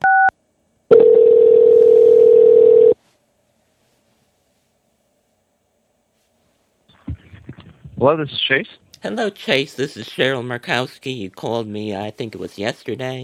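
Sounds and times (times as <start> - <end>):
long steady telephone tone: 0.9 - 3.0
speech: 8.0 - 13.2.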